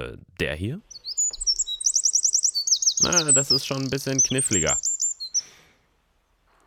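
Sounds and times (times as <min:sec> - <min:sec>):
speech: 0:00.1 - 0:01.0, 0:03.0 - 0:04.9
Eurasian wren singing high trills and chattering notes: 0:00.8 - 0:05.6.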